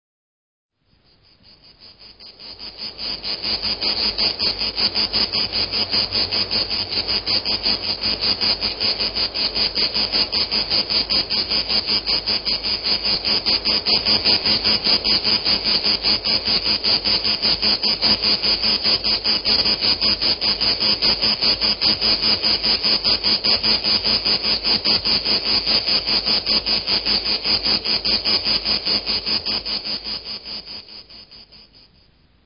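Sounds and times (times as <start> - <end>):
cicada: 0.8 - 32.4.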